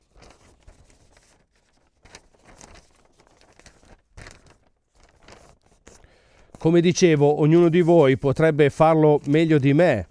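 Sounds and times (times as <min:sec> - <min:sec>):
sheet of paper rustling while handled and folded: 0:00.0 - 0:07.2
speech: 0:06.6 - 0:10.0.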